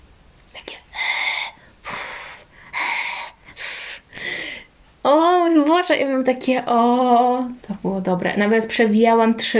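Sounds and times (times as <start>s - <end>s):
voice imitating heavy mechanical respirator breathing: 0.9s - 4.7s
speech: 5.8s - 9.5s.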